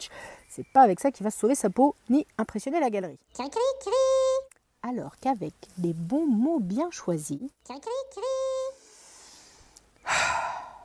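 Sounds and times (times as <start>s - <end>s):
speech: 0.0s - 8.6s
person taking a deep breath: 0.1s - 0.5s, 8.8s - 10.8s.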